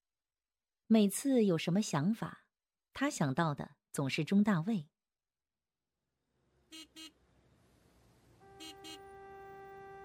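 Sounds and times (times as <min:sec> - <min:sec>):
speech: 0:00.9 - 0:02.4, 0:03.0 - 0:04.9, 0:06.7 - 0:07.2
low rumble of traffic: 0:06.3 - 0:10.0
car horn honking in traffic: 0:06.7 - 0:07.3, 0:08.4 - 0:10.0.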